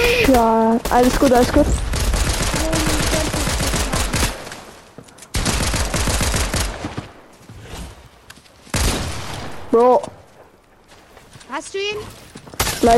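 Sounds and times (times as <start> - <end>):
video game automatic gunfire: 0.0 - 4.7, 5.3 - 7.2
speech: 0.3 - 2.0, 9.7 - 10.2, 11.5 - 12.9.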